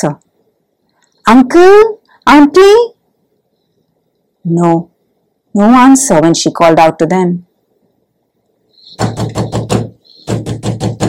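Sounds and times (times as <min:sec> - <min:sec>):
speech: 0:00.0 - 0:00.2, 0:01.3 - 0:03.0, 0:04.4 - 0:04.9, 0:05.5 - 0:07.5, 0:08.9 - 0:09.4
knocking on a wooden door: 0:08.9 - 0:11.0.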